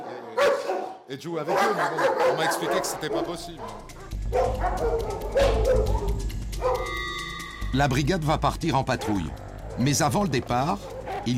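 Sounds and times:
six-year-old female shelter dog barking: 0.0s - 6.9s, 8.9s - 10.0s, 10.7s - 11.3s
speech: 1.1s - 7.0s, 7.7s - 11.3s.

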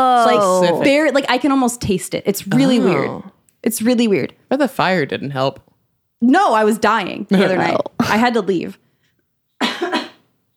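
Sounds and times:
speech: 0.0s - 8.8s
dry cough: 9.6s - 10.3s.

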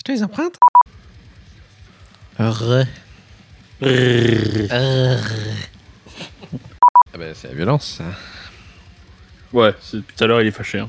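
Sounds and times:
speech: 0.0s - 0.7s, 2.4s - 3.0s, 3.8s - 5.7s, 6.5s - 8.5s, 9.5s - 10.8s
short sharp electronic beeps: 0.6s - 0.8s, 6.8s - 7.0s
deep harsh growled metal vocals in a played song: 2.4s - 3.1s, 3.8s - 5.8s
laughter: 6.0s - 6.8s.

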